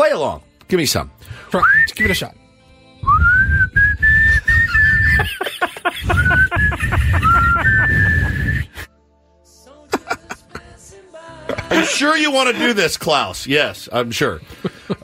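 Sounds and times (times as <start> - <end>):
speech: 0.1 - 2.4, 11.7 - 14.8
person whistling a sustained wavering tune: 1.5 - 2.3, 3.0 - 8.9
breathy laughter and snickering: 4.9 - 8.6, 9.9 - 10.7, 14.5 - 15.0.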